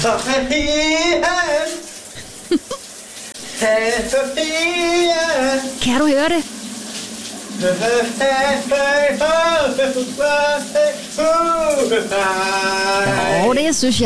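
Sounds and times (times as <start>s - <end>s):
speech: 0.0s - 1.8s, 2.5s - 2.8s, 3.6s - 6.6s, 7.6s - 14.0s
man singing a warbling melody: 0.0s - 1.9s, 3.4s - 5.8s, 7.6s - 13.6s
shower running: 0.0s - 14.0s
person asking a brief spoken question: 13.0s - 14.0s.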